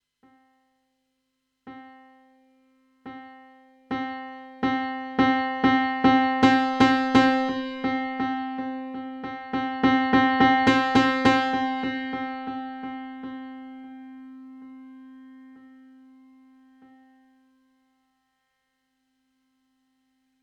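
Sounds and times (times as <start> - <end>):
piano playing: 3.1 - 17.3.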